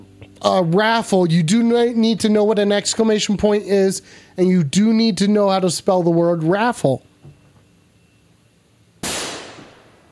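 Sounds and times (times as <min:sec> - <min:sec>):
speech: 0:00.4 - 0:07.1
gunshot: 0:09.0 - 0:10.0.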